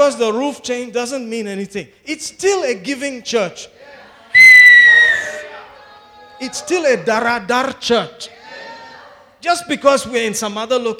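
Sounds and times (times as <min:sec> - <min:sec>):
speech: 0:00.0 - 0:04.0, 0:06.4 - 0:08.4, 0:09.4 - 0:10.9
piercing whistle from a gathered crowd: 0:04.4 - 0:05.5.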